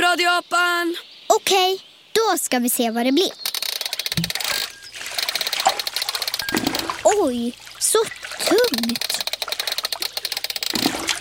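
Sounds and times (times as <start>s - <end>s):
speech: 0.4s - 3.5s, 7.0s - 9.2s
water sloshing in a small goldfish bowl: 4.2s - 11.1s.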